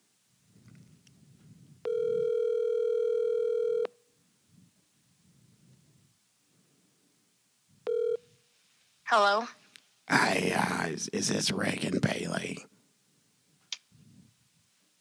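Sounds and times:
ringback tone of an unanswered telephone call: 0:01.8 - 0:04.0, 0:07.9 - 0:08.3
speech: 0:09.1 - 0:12.7
low murmuring background: 0:10.1 - 0:12.6.

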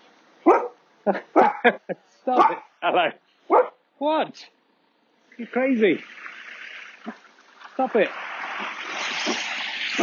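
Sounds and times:
dog barking at people going into their house: 0:00.4 - 0:02.7, 0:03.5 - 0:03.8
speech: 0:01.0 - 0:03.2, 0:04.0 - 0:04.6, 0:05.4 - 0:06.3, 0:07.8 - 0:09.4.

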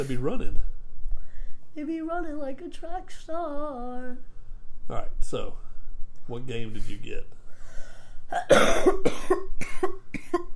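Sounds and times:
speech: 0:00.0 - 0:00.7, 0:01.8 - 0:04.3, 0:04.9 - 0:05.6, 0:06.3 - 0:07.4, 0:08.3 - 0:10.4
person gasping between coughs: 0:07.5 - 0:08.3
harsh coughing fit: 0:08.3 - 0:10.5.

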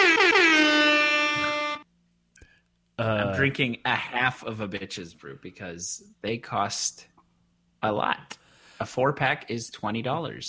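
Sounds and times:
air horn blast: 0:00.0 - 0:01.8
speech: 0:03.0 - 0:07.1, 0:07.8 - 0:10.4.

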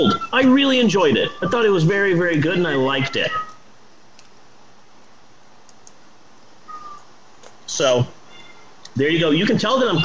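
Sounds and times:
speech: 0:00.0 - 0:03.5, 0:07.7 - 0:08.2, 0:09.0 - 0:10.0
faint hiss: 0:00.0 - 0:10.0
short soft cat meow: 0:02.6 - 0:03.6, 0:06.7 - 0:07.0, 0:08.3 - 0:08.7
light ticking clicks: 0:05.6 - 0:06.0.

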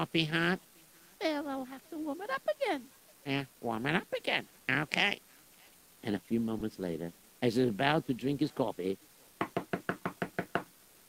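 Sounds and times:
speech: 0:00.0 - 0:05.3, 0:06.0 - 0:09.1
firm knocks on a door: 0:09.4 - 0:10.7.

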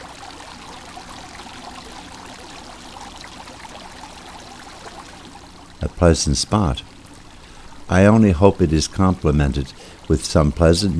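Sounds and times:
water pouring and splashing from a marble fountain: 0:00.0 - 0:05.6
speech: 0:05.8 - 0:06.9, 0:07.9 - 0:10.9.

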